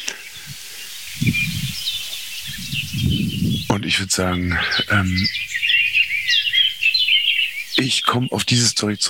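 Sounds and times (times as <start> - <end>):
other birdsong: 0.0 - 9.0
song thrush scolding calls: 0.0 - 9.0
speech: 3.7 - 5.5, 7.8 - 9.0.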